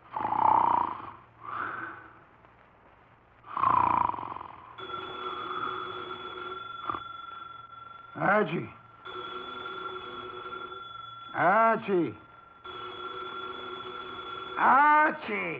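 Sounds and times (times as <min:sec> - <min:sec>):
man snoring loudly through his nose: 0:00.1 - 0:02.0, 0:03.5 - 0:06.0
desk telephone ringing with electronic trill: 0:04.8 - 0:15.5
speech: 0:08.4 - 0:08.8, 0:11.4 - 0:12.2, 0:14.6 - 0:15.5.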